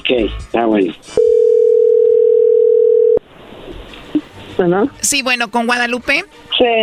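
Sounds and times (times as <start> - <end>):
speech: 0.1 - 1.2, 4.6 - 6.8
telephone dial tone as a call is placed: 1.2 - 3.2.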